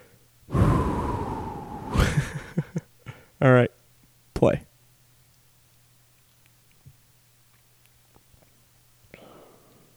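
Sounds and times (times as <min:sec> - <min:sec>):
deep breath: 0:00.0 - 0:02.2, 0:09.1 - 0:09.9
speech: 0:03.4 - 0:03.7, 0:04.4 - 0:04.7.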